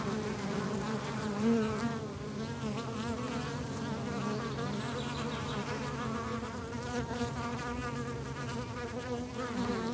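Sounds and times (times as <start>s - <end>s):
swarm of bees droning in the countryside: 0.0s - 9.9s.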